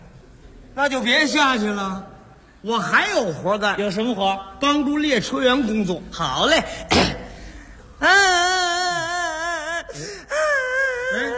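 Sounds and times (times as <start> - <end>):
speech: 0.8 - 7.2
small boy crying while held by a woman: 8.0 - 11.3.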